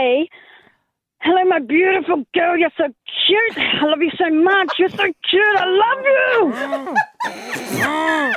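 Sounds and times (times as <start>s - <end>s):
speech: 1.2s - 8.3s
dog grunting and whimpering: 4.5s - 8.3s.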